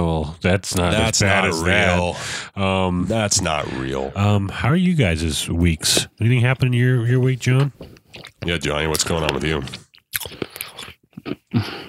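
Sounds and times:
speech: 0.1s - 10.6s, 11.2s - 11.8s
person chewing on a bracelet: 7.6s - 11.5s.

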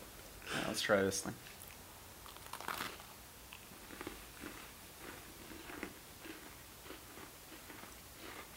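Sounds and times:
speech: 0.8s - 1.6s
people chewing cookies near microphones: 1.4s - 8.5s.

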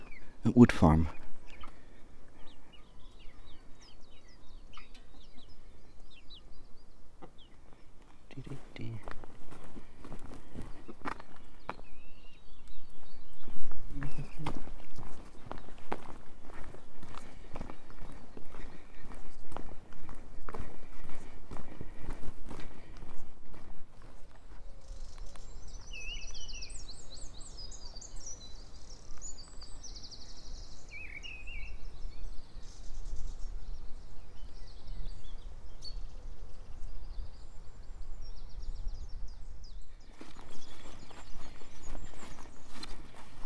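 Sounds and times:
birds chirping faintly: 0.0s - 43.4s
speech: 0.4s - 1.2s
footsteps crunching through grass at a walking pace: 8.0s - 12.0s, 12.7s - 25.5s, 40.1s - 43.4s.

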